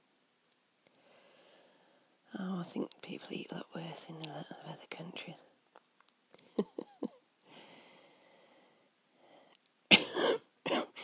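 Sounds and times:
speech: 2.6 - 5.6
person coughing with harsh chesty coughs: 9.9 - 11.0.

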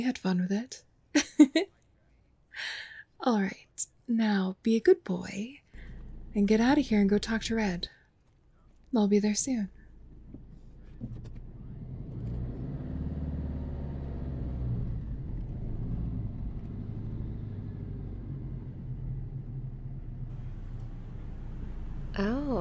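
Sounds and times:
speech: 0.0 - 1.8, 2.6 - 5.6, 6.4 - 8.0, 8.9 - 9.8, 22.2 - 22.5
car engine idling: 5.8 - 7.9, 9.7 - 22.5.

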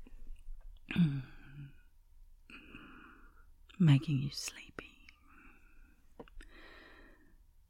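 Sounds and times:
person yawning: 0.9 - 1.7
speech: 3.8 - 4.8.

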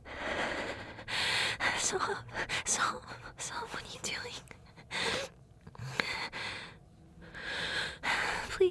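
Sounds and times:
person breathing heavily trying to catch their breath: 0.0 - 1.8, 4.8 - 8.5
speech: 1.9 - 5.3.

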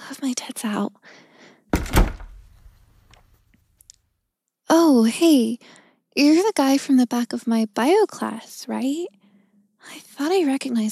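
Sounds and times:
speech: 0.2 - 1.3, 4.9 - 9.2, 9.8 - 10.9
heavy door slamming shut: 1.7 - 2.7.

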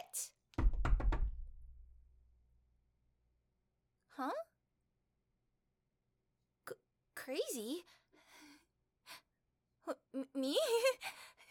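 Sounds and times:
speech: 0.2 - 0.4, 4.2 - 4.5, 7.3 - 8.0, 9.9 - 11.2
someone pounding hard on a closed door: 0.6 - 1.7.

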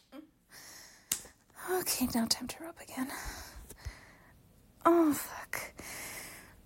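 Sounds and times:
sharp crisp slaps on skin: 1.1 - 1.4
speech: 1.8 - 3.5, 4.9 - 5.8.

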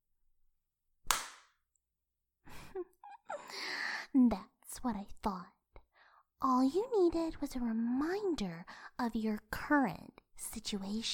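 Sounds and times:
sharp loud slap: 1.1 - 1.6
speech: 3.5 - 5.6, 6.4 - 11.1.

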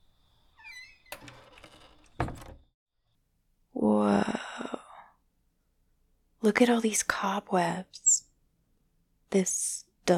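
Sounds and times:
unlocked wooden cabin door creaking as it is pushed open: 0.5 - 2.7
wooden cabin door bumping to a stop with a dull thud: 1.1 - 2.7
speech: 6.5 - 8.3, 9.3 - 10.1.

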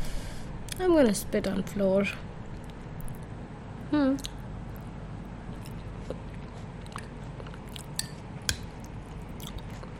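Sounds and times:
speech: 0.8 - 2.3, 3.9 - 4.3
person chewing food with crunchy bites: 4.2 - 9.9.

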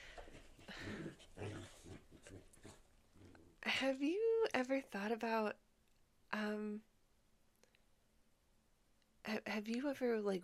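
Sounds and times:
puppy growling: 0.6 - 3.6
speech: 3.8 - 5.6, 6.3 - 6.9, 9.2 - 10.4.

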